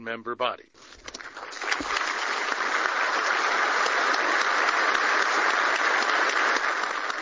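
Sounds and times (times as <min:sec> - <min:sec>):
diplomats applauding in a standing ovation at the UN General Assembly: 0:01.2 - 0:07.2.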